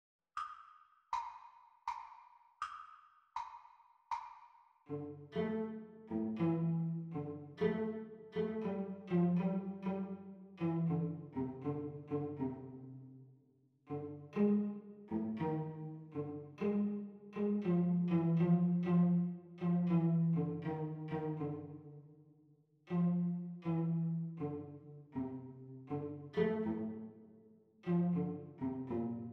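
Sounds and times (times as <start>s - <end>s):
cello duet playalong at practice speed: 4.9s - 13.1s, 13.9s - 22.0s, 22.9s - 29.3s.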